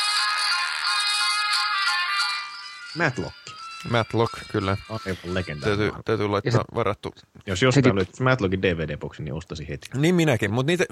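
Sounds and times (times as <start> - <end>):
mobile phone ringing with electronic ringtone: 0.0 - 6.0
speech: 2.9 - 10.9.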